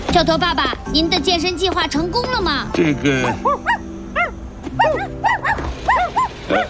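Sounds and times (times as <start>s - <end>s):
speech: 0.2s - 3.7s
puppies yipping and barking in high-pitched bursts: 3.2s - 6.6s.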